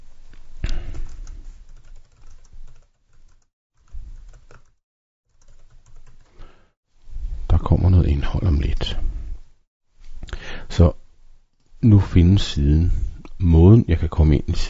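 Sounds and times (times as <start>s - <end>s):
typing on a computer keyboard: 0.9s - 6.3s
speech: 8.3s - 9.1s, 10.8s - 11.0s, 11.8s - 14.6s.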